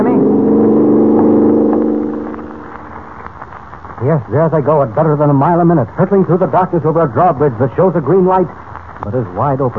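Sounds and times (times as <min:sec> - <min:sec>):
car engine droning loudly: 0:00.0 - 0:03.3
speech: 0:04.1 - 0:09.7.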